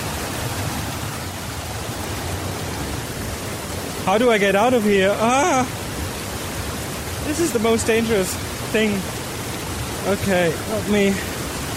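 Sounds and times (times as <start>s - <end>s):
water rushing and bubbling: 0.0s - 11.7s
speech: 4.0s - 5.8s, 7.2s - 9.2s, 10.0s - 11.3s.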